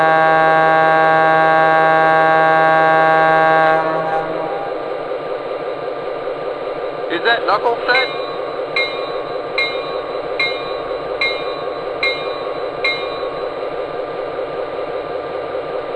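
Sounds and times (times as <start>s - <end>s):
passenger train pulling into a station rumbling: 0.0s - 15.9s
speech: 7.5s - 8.2s
passenger train bell clanging: 7.9s - 14.0s.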